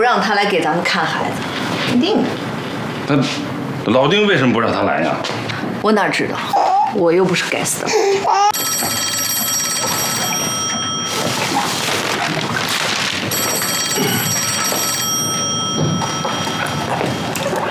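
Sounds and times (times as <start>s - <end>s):
speech: 0.0s - 2.5s, 3.1s - 9.2s
electronic telephone ringing: 8.5s - 17.6s.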